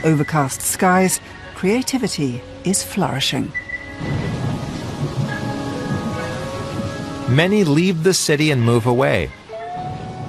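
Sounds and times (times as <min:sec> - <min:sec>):
speech: 0:00.0 - 0:04.4, 0:07.3 - 0:09.4
steady rain: 0:00.5 - 0:10.2
distant thunder rumble: 0:03.9 - 0:07.8.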